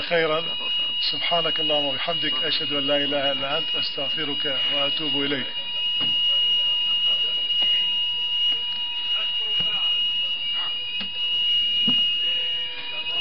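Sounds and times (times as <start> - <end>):
fire alarm ringing during a lecture: 0.0 - 13.1
room noise: 0.0 - 13.1
voices: 0.0 - 13.1
speech: 0.1 - 6.2.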